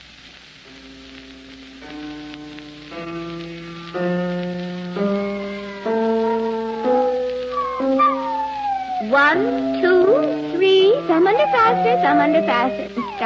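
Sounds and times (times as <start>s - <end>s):
faint steady hiss: 0.0s - 13.2s
piano playing stepping notes during a piano lesson: 1.8s - 13.2s
speech: 3.9s - 4.2s, 11.1s - 13.2s
big fat spaniel howling along with a piano: 5.0s - 13.2s.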